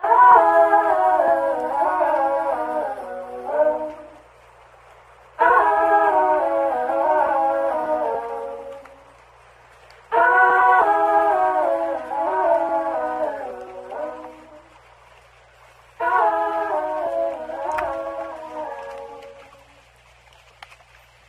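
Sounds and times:
person singing in a bathroom: 0.0 - 4.2, 5.4 - 9.0, 10.1 - 14.7, 16.0 - 19.8.

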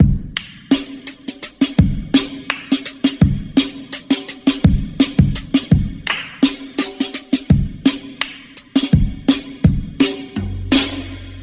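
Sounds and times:
funky drum loop: 0.0 - 11.4
hand claps: 0.4 - 0.7, 2.4 - 2.8, 6.0 - 6.5, 8.1 - 8.6.

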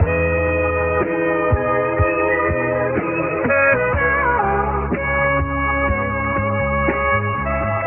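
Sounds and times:
horns loop: 0.0 - 7.8
voice loop: 2.3 - 5.2.

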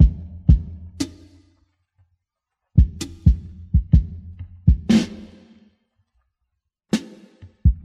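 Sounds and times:
sparse boom bap drum loop: 0.0 - 1.4, 2.8 - 5.4, 6.9 - 7.8.

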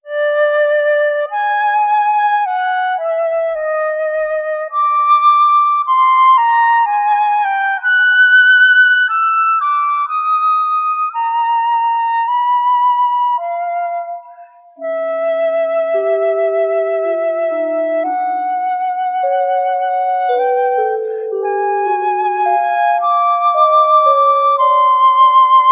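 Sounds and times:
sad flute loop: 0.0 - 25.6.

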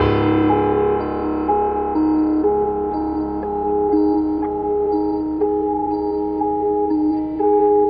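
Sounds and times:
sad piano loop: 0.0 - 7.8.

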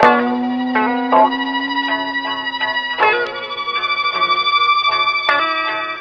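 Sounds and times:
high guitar loop: 0.0 - 3.8
violin tremble loop: 0.0 - 5.3.

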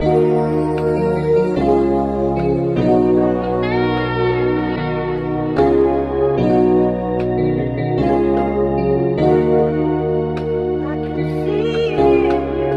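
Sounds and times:
keyboard: 0.0 - 12.7
vocal sample in phonk loops: 10.8 - 12.7.

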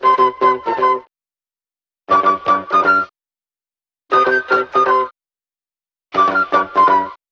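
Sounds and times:
phonky flute loop: 0.0 - 1.1, 2.1 - 3.1, 4.1 - 5.1, 6.1 - 7.2.

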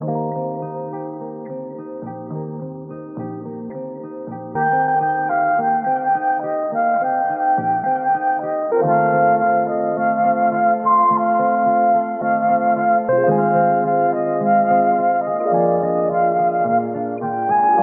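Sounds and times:
guitar in phonk loops: 0.0 - 17.8
flute in phonk loops: 4.8 - 17.8.

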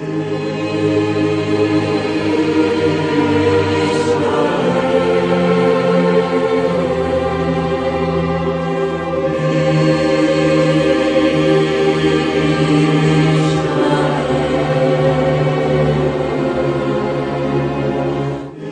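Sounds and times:
sad voice choir loop: 0.0 - 18.7.

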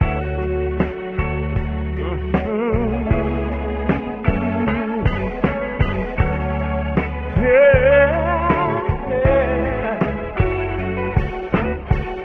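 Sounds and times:
strings loop: 0.0 - 12.2
voice loop: 1.9 - 5.6, 7.3 - 10.4.

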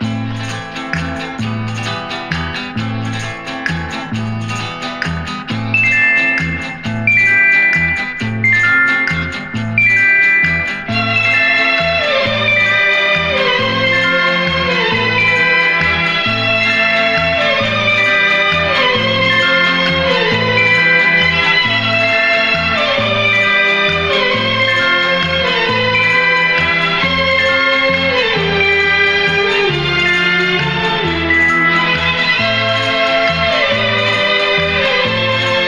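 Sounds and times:
sad guitar loop: 0.0 - 35.6.

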